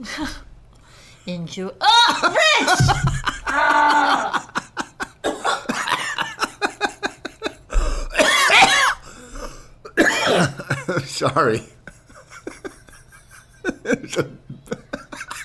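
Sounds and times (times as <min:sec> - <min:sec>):
speech: 0:00.0 - 0:00.5, 0:01.2 - 0:04.4, 0:10.9 - 0:11.8, 0:14.1 - 0:14.4
laughter: 0:01.9 - 0:07.8, 0:10.6 - 0:15.4
person with a lot of mucus coughing: 0:07.8 - 0:10.9
person with a lot of mucus clearing throat: 0:08.1 - 0:09.0, 0:09.9 - 0:10.7.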